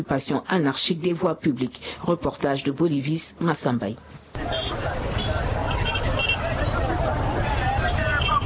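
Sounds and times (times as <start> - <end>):
speech: 0.0 - 5.4
steady crowd babble at a busy market street: 4.1 - 8.4
rumble of passing vehicles and motorcycles on a market street: 4.3 - 8.4.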